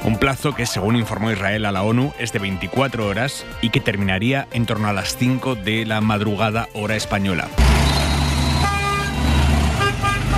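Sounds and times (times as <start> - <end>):
speech: 0.0 - 7.8
car horns honking in street traffic: 7.6 - 10.3
steady street traffic engine rumble: 7.6 - 10.3.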